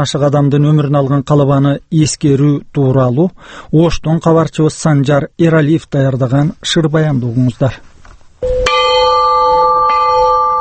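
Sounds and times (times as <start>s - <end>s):
speech: 0.0s - 8.6s
50 kg Russian-made peace bell with Kyrgyz ornaments struck at a memorial ceremony: 8.4s - 10.5s.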